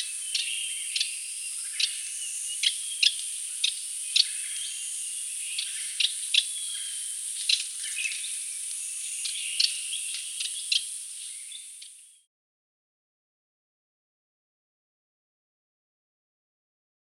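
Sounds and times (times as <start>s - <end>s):
Radde's warbler clicky chuck calls: 0.0s - 12.2s
high-pitched hiss: 0.0s - 12.2s.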